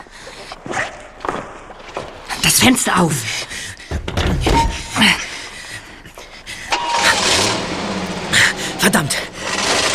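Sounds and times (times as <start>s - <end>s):
speech: 2.4s - 3.5s, 8.8s - 9.3s
knocks: 3.9s - 5.2s
car engine starting, revving and driving away: 6.7s - 9.9s.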